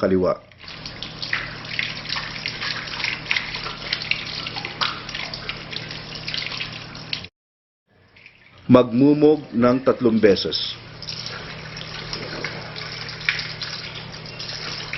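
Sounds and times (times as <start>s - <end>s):
speech: 0.0s - 0.8s, 8.7s - 10.8s
running tap water while washing hands during ritual ablution: 0.5s - 7.3s, 7.9s - 14.9s.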